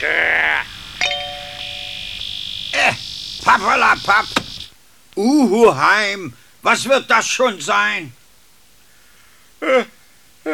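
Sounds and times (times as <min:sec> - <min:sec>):
speech: 0:00.0 - 0:00.4, 0:03.5 - 0:04.4, 0:05.2 - 0:08.2, 0:09.6 - 0:10.5
radio station interval chime: 0:01.0 - 0:02.1.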